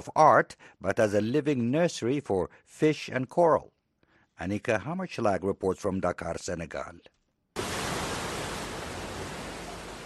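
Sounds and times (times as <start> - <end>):
speech: 0.0 - 3.8, 4.4 - 7.2
waves washing against a beach: 7.6 - 10.0.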